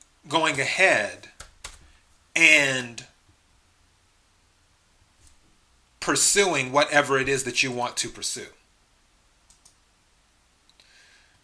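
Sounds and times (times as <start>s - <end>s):
quiet hiss: 0.0s - 11.4s
speech: 0.2s - 1.3s, 2.4s - 3.1s, 6.0s - 8.6s
computer keyboard keys clicking while typing: 9.5s - 9.8s.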